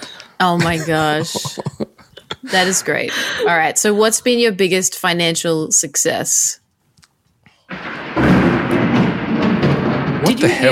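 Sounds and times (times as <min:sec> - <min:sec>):
speech: 0:00.4 - 0:01.8, 0:02.5 - 0:06.6, 0:10.4 - 0:10.7
laughter: 0:00.5 - 0:03.6
loud thunder clap rolling into heavy rumble: 0:07.7 - 0:10.7.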